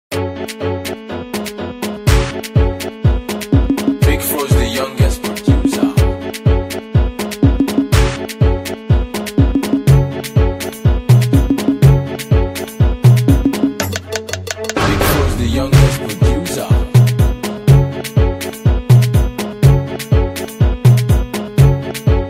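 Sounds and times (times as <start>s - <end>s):
instrumental music: 0.1s - 22.2s.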